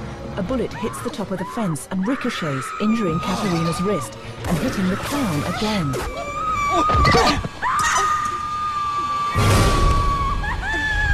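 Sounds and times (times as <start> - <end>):
speech: 0.4 - 7.5
woman screaming in a long high-pitched cry: 0.7 - 4.1, 4.7 - 11.1.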